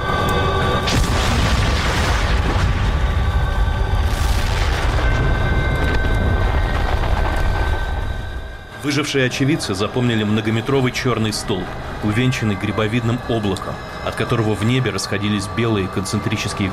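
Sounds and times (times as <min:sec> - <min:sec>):
sustained heavy rumbling and roaring: 0:00.0 - 0:16.7
loud explosion boom: 0:00.8 - 0:07.7
crackling debris: 0:00.8 - 0:08.7
speech: 0:08.9 - 0:16.7.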